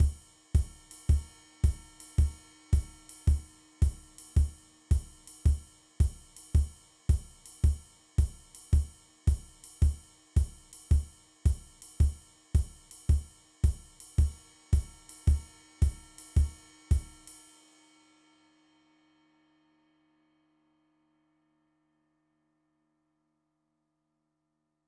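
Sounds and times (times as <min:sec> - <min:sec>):
four on the floor swing drum beat: 0:00.0 - 0:17.4.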